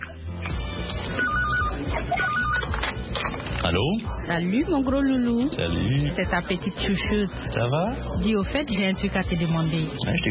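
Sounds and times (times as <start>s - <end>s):
telephone ringing with an electronic trill: 1.1s - 3.0s
speech: 3.7s - 10.3s.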